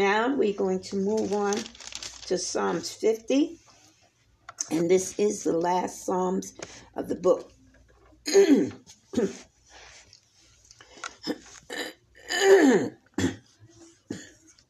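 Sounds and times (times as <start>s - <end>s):
speech: 0.0s - 3.6s, 4.7s - 7.5s, 8.2s - 9.5s, 12.4s - 13.0s
person clearing a husky throat and coughing during a scripture reading: 8.3s - 9.4s, 11.2s - 13.5s, 14.1s - 14.4s.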